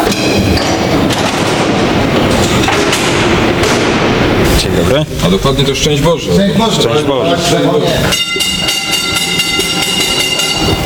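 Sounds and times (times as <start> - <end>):
mine train wheels clacking on rails: 0.0 - 3.8, 7.8 - 10.8
loud metallic hum of an underground mine train: 0.0 - 10.8
underground mine train on rails 212 metres below ground: 0.0 - 10.8
speech: 4.8 - 8.8.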